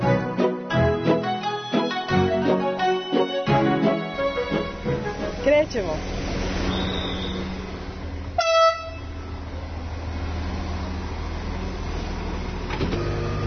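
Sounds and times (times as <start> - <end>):
old narrow-gauge train locomotive rumbling as it pulls out of a station: 0.8 - 13.4
speech: 5.7 - 6.2
short sharp whistle-like burst of an old narrow-gauge train: 6.7 - 7.5, 8.4 - 9.1.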